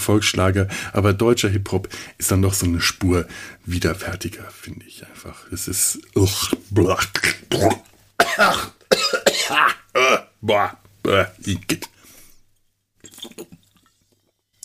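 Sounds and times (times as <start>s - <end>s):
speech: 0.0s - 8.8s, 9.5s - 11.9s
voice imitating throat hawking and spitting: 6.3s - 8.8s, 9.5s - 12.0s, 13.0s - 13.9s
faint wet squishy sounds: 13.0s - 14.6s.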